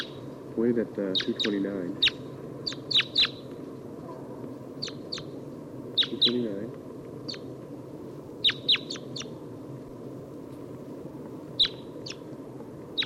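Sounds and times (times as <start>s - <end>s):
crossbill giving lob type two calls in trees: 0.0s - 0.3s, 1.0s - 3.5s, 4.8s - 6.5s, 7.2s - 7.5s, 8.4s - 9.4s, 11.6s - 12.3s
faint low rumble: 0.0s - 13.0s
speech: 0.6s - 3.2s, 6.3s - 6.8s.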